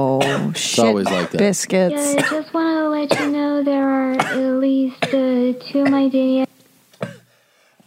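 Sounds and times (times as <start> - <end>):
person coughing: 0.2 - 1.4, 2.0 - 2.5, 4.1 - 6.0, 7.0 - 7.3
speech: 0.5 - 6.5.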